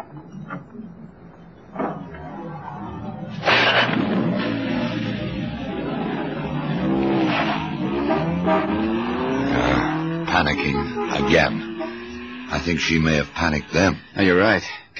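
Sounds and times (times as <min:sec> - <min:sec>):
car engine turning over and revving as the car pulls away: 0:03.2 - 0:13.8
speech: 0:10.4 - 0:11.9, 0:12.5 - 0:14.9.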